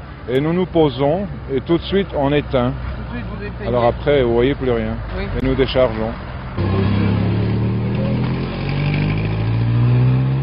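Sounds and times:
speech: 0.2s - 7.0s
Red Cross cargo truck engine revving on road: 1.4s - 10.4s.

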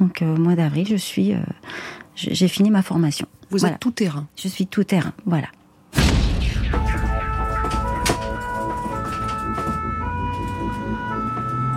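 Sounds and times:
speech: 0.0s - 5.6s
sharp knocks and clatters: 6.0s - 9.9s
ambulance siren wailing: 6.8s - 11.7s
moving vehicle rumble: 7.3s - 11.7s.

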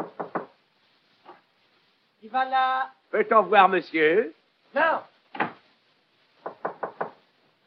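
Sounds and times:
knocking on a door: 0.0s - 0.6s, 6.4s - 7.2s
speech: 2.3s - 5.1s.

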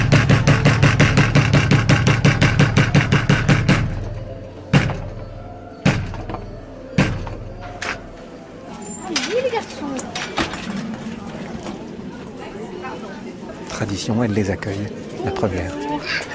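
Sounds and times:
heavy theatre doors being opened with clunks and thuds: 0.0s - 12.0s
murmuring voices in a reverberant hall: 2.6s - 16.3s
speech: 14.1s - 16.2s.

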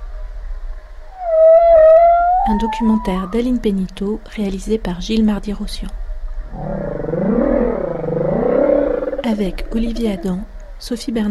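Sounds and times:
humpback whale call: 1.1s - 3.6s, 6.6s - 10.2s
speech: 2.5s - 6.8s, 9.3s - 11.2s.

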